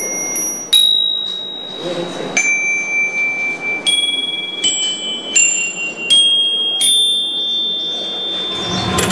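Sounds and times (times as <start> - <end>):
small metal bells ringing: 0.0 - 9.0.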